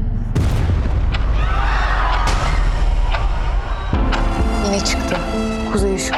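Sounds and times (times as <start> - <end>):
constant deep rumble: 0.0 - 5.9
explosive blasts: 0.3 - 4.3
speech: 4.8 - 6.1.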